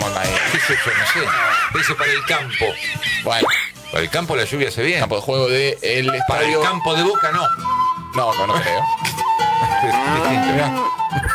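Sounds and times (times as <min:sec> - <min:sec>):
laughter: 0:00.0 - 0:04.7, 0:06.2 - 0:07.4, 0:09.6 - 0:11.3
speech: 0:00.6 - 0:09.2, 0:09.8 - 0:11.3
cow mooing: 0:09.8 - 0:11.1.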